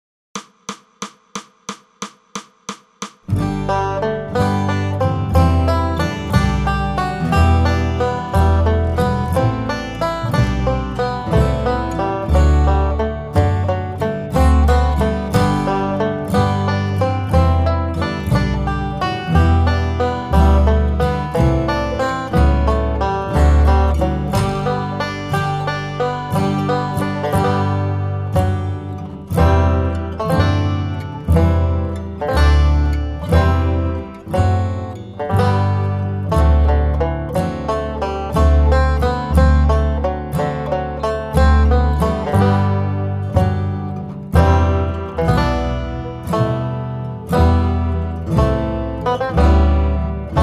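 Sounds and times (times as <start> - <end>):
banjo: 3.3 - 50.4.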